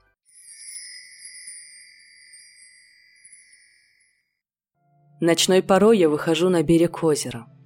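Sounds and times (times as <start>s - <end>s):
glass wind chimes stirred by the wind at a coffee shop door: 0.2s - 4.5s
speech: 5.2s - 7.6s.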